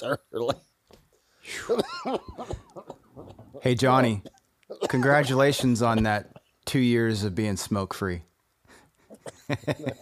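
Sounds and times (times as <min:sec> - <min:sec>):
harsh throaty coughing: 0:00.0 - 0:00.7, 0:01.5 - 0:06.6, 0:09.1 - 0:10.0
speech: 0:00.0 - 0:00.7, 0:01.4 - 0:02.9, 0:03.6 - 0:04.3, 0:04.9 - 0:08.3, 0:09.5 - 0:10.0.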